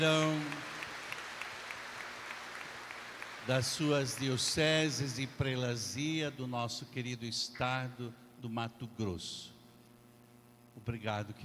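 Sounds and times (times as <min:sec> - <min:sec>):
speech: 0:00.0 - 0:00.7, 0:03.4 - 0:09.6, 0:10.8 - 0:11.4
crowd applause at a church gathering in Mato Grosso Brazil: 0:00.0 - 0:04.6.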